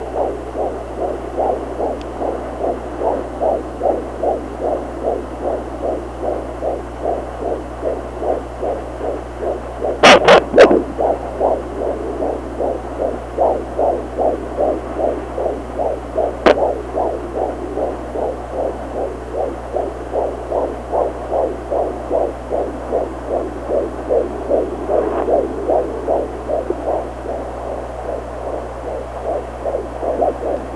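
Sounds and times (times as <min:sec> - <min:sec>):
newborn baby heartbeat: 0:00.0 - 0:30.7.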